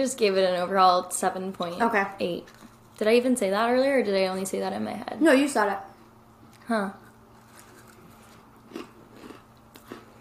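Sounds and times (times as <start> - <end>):
speech: 0.0 - 5.9, 6.7 - 7.0
biting into a crispy overcooked cookie: 7.4 - 10.1.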